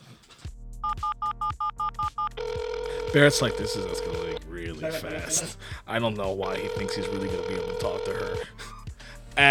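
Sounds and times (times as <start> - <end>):
telephone ringing on an unanswered call: 0.8 - 5.4, 6.4 - 8.5
speech: 3.1 - 8.7.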